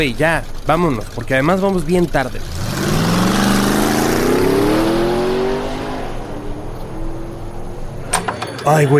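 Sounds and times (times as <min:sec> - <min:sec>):
speech: 0:00.0 - 0:02.9, 0:08.7 - 0:08.9
car engine revving and accelerating away in Monterrey: 0:02.4 - 0:08.2.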